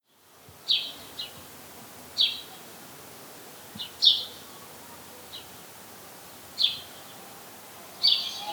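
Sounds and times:
House sparrow Passer domesticus chirping: 8.0s - 8.5s.

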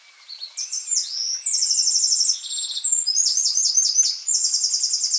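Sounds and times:
Eurasian wren Troglodytes troglodytes singing: 0.1s - 5.1s.

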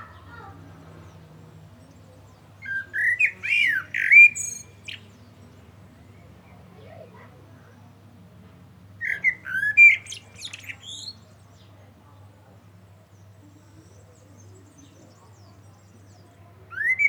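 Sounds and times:
Common blackbird Turdus merula singing a mellow whistled phrase: 0.1s - 6.2s, 9.0s - 11.7s, 13.2s - 17.0s.

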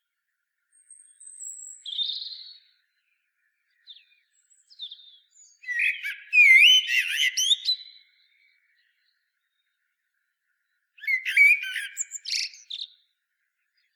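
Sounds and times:
common blackbird Turdus merula singing: 0.7s - 3.0s, 3.7s - 9.7s, 11.0s - 13.1s.

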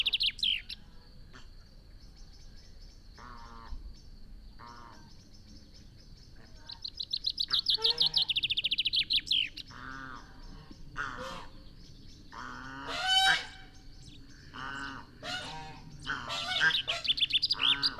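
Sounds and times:
common chaffinch Fringilla coelebs song: 5.2s - 17.9s
common chaffinch Fringilla coelebs calls: 6.6s - 17.9s.

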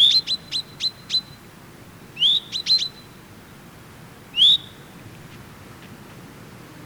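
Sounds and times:
common chaffinch calls, Fringilla coelebs: 0.0s - 1.5s, 2.2s - 3.2s, 4.3s - 4.9s.

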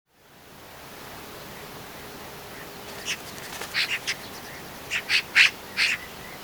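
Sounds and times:
Eurasian magpie Pica pica uttering harsh scratchy chack notes: 3.0s - 4.3s, 4.9s - 6.0s.

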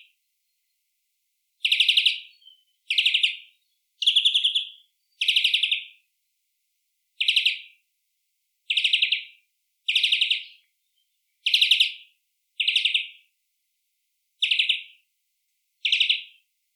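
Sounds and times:
European greenfinch repeating a short rattling trill: 1.6s - 5.9s, 8.7s - 10.6s, 11.5s - 12.0s, 12.6s - 13.2s, 15.8s - 16.3s.

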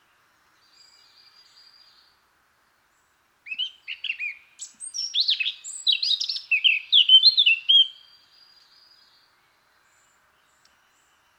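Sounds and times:
Eurasian blackcap Sylvia atricapilla singing a fast jumbled warble: 3.5s - 8.1s.

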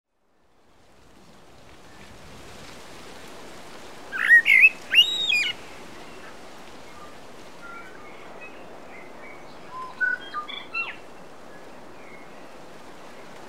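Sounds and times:
steady background hiss: 0.3s - 13.4s
common blackbird Turdus merula whistled phrases: 4.2s - 5.6s.

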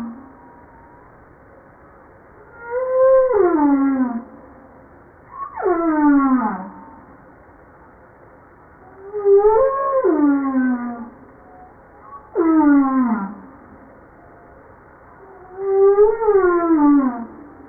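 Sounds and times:
humpback whale song: 2.4s - 4.5s, 5.4s - 7.1s, 8.8s - 17.6s.

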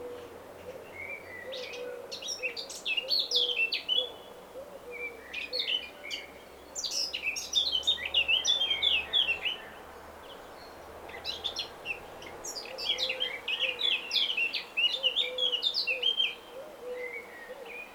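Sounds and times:
Eurasian blackcap Sylvia atricapilla song: 0.6s - 17.9s.

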